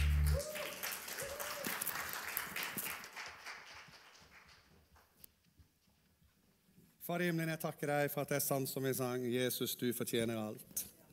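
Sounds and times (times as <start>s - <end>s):
audience applause for singers and musicians: 0.0s - 4.7s
speech: 7.1s - 10.9s.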